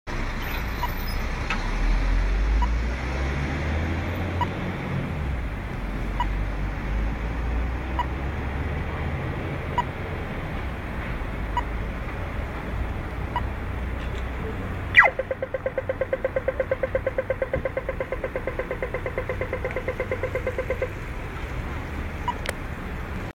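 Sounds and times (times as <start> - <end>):
traffic in Dublin: 0.1 - 23.3.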